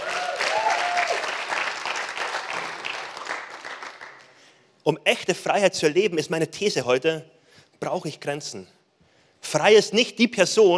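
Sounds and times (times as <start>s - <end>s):
large audience applauding: 0.0s - 4.4s
speech: 4.8s - 8.8s, 9.4s - 10.7s.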